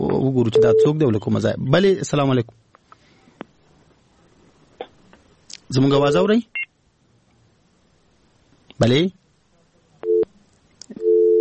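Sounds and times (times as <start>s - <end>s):
speech: 0.2s - 2.6s, 5.7s - 6.6s, 8.8s - 9.2s
phone busy tone after a call disconnects: 0.6s - 1.0s, 10.0s - 10.3s, 10.9s - 11.4s.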